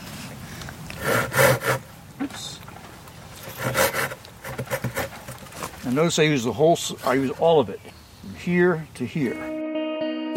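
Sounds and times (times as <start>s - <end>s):
hand saw cutting through wood: 1.0s - 1.9s, 3.4s - 5.7s
speech: 5.9s - 9.5s.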